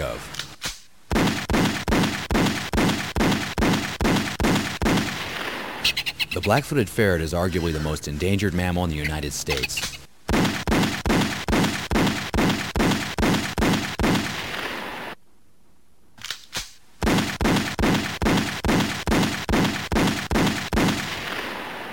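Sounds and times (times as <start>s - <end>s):
loud sharp gunshots in rapid series: 0.6s - 5.8s, 9.7s - 15.2s, 16.5s - 21.9s
speech: 6.4s - 9.9s.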